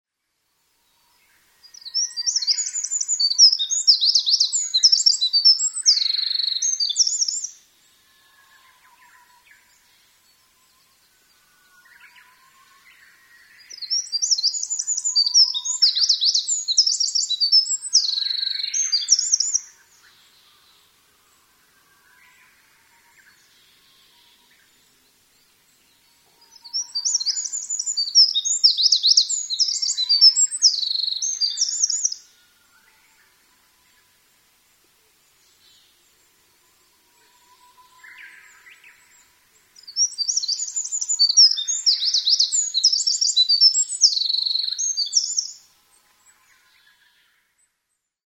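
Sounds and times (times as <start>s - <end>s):
Eurasian wren singing: 1.6s - 7.6s, 8.5s - 20.8s, 25.4s - 32.3s, 37.2s - 45.6s.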